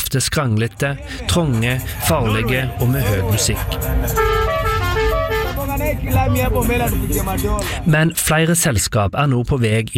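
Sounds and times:
dense rumbling street traffic in Nairobi: 0.0 - 8.9
speech: 0.1 - 4.5, 5.7 - 9.9
matatu minibus horns honking in Nairobi traffic: 1.0 - 7.9.

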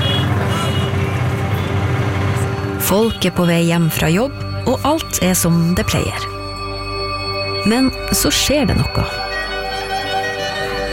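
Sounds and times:
small mopeds weaving through traffic: 0.0 - 3.8
dense city traffic in Beirut Lebanon: 0.0 - 10.9
speech: 2.9 - 6.4, 7.6 - 9.2.

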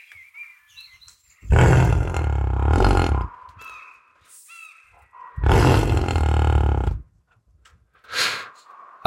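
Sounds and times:
European bison deep roaring grunts and rumbling bellows: 1.5 - 3.3, 5.4 - 7.0.

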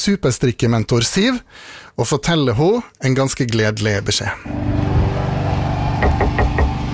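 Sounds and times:
speech: 0.0 - 5.0
steady low hum: 4.5 - 6.9
knocking on a door: 6.0 - 6.8.

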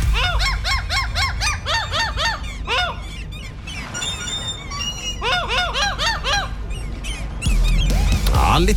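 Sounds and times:
low backing hum: 0.0 - 8.7
pitch-shifted seagull squawks chopped into a pop song melody: 0.0 - 8.7.

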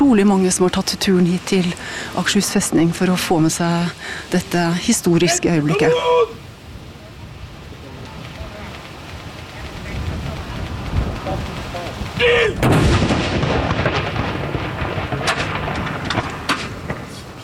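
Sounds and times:
steady outdoor noise: 0.0 - 17.4
speech: 0.1 - 6.5
ceremonial mourning salute cannon boom at Akershus Fortress: 12.6 - 17.2.

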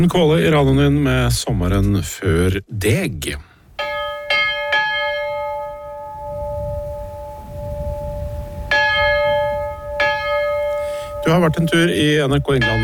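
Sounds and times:
speech: 0.0 - 3.5, 11.3 - 12.8
manually rung chapel church bells ringing: 3.8 - 12.8.

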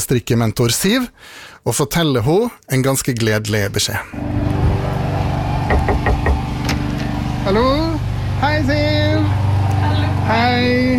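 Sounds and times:
speech: 0.0 - 4.6, 10.3 - 10.9
steady low hum: 4.2 - 10.9
knocking on a door: 5.6 - 6.5.

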